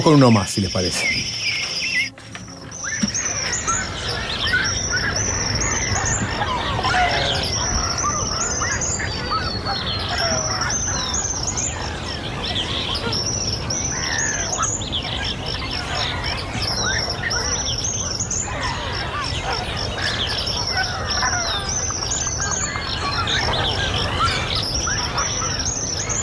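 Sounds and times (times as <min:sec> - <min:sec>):
speech: 0:00.0 - 0:01.5
dawn chorus of many birds in an ombú forest by the Balizas stream in Rocha: 0:00.0 - 0:26.2
honking bird calls: 0:00.0 - 0:26.2
repeated high bird whistles: 0:00.3 - 0:09.5.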